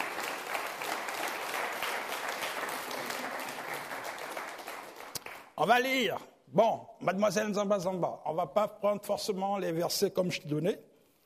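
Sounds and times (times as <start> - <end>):
church congregation applauding: 0.0 - 5.8
speech: 5.6 - 10.9.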